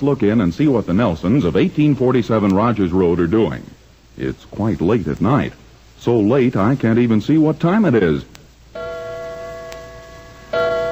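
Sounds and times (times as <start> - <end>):
speech: 0.0 - 8.8
grandfather clock striking: 8.8 - 10.9.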